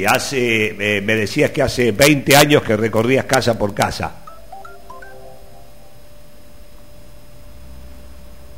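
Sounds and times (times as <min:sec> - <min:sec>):
speech: 0:00.0 - 0:04.2
steady hum and telephone line noise: 0:04.1 - 0:08.5
telephone dialing tones redialing a dropped call: 0:04.3 - 0:05.5.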